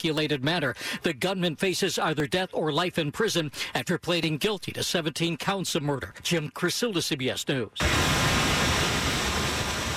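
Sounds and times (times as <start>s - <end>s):
speech: 0.0s - 8.3s
continuous hiss of spraying water: 7.8s - 9.9s.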